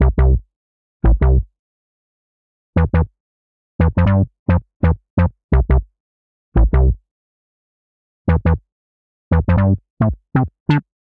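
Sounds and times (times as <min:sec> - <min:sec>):
tonal bassline in C major at 87 bpm: 0:00.0 - 0:01.5, 0:02.8 - 0:03.1, 0:03.8 - 0:05.9, 0:06.6 - 0:07.0, 0:08.3 - 0:08.6, 0:09.3 - 0:10.9.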